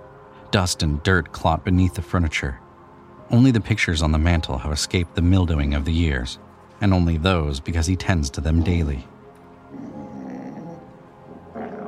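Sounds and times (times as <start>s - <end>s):
speech: 0.5s - 2.6s, 3.3s - 9.1s
dog growling: 9.7s - 11.8s.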